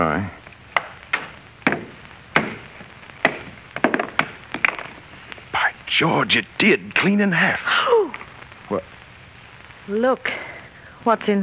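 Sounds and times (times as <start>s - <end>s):
speech: 0.0s - 0.4s, 6.0s - 8.0s, 9.9s - 11.4s
hammer striking and splitting a stone: 0.8s - 4.8s.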